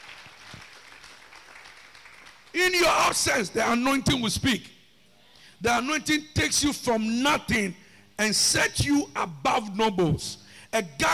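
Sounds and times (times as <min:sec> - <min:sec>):
congregation clapping hands during a church service: 0:00.0 - 0:03.4
speech: 0:02.6 - 0:04.8, 0:05.6 - 0:11.1.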